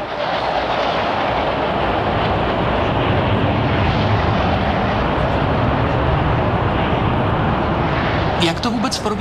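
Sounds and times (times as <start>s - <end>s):
MiG-21 jet fighters roaring overhead in a flyover: 0.0s - 9.1s
speech: 8.9s - 9.1s.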